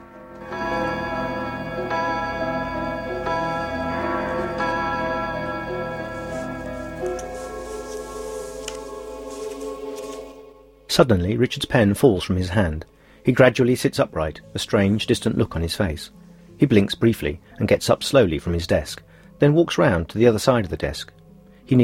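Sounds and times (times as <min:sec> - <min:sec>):
clock striking eight in the evening: 0:00.1 - 0:09.3
speech: 0:11.0 - 0:21.8.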